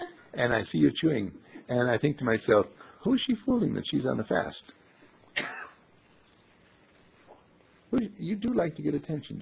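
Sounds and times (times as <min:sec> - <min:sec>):
speech: 0:00.4 - 0:04.8, 0:07.9 - 0:09.4
single sharp raspy cough: 0:05.3 - 0:05.8.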